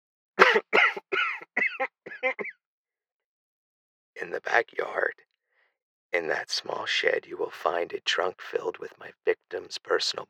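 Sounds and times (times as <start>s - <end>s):
man coughing in harsh bursts: 0.4s - 2.5s
speech: 4.2s - 5.3s, 6.1s - 10.2s.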